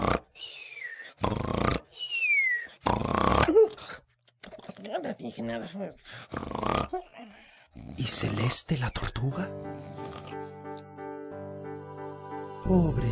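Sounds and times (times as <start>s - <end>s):
person imitating loud cartoonish snoring of an exhausted animal character: 0.0s - 0.3s, 1.2s - 1.9s, 2.8s - 4.0s, 6.2s - 7.2s, 9.8s - 10.4s
expressive vocal sounds: 0.0s - 10.6s, 11.7s - 13.1s
speech: 5.3s - 7.3s, 8.0s - 10.9s, 12.7s - 13.1s.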